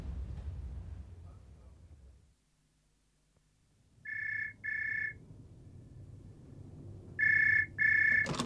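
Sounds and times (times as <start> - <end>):
telephone ringing in double-burst rings: 4.0 - 5.2, 7.2 - 8.4.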